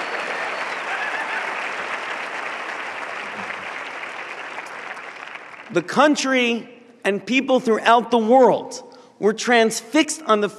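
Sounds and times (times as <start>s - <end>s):
sizable audience applauding: 0.0s - 5.7s
speech: 5.7s - 10.5s.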